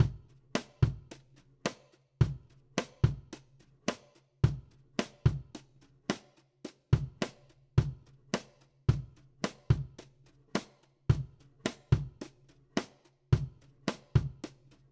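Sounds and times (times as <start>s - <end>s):
country drums: 0.0s - 14.8s.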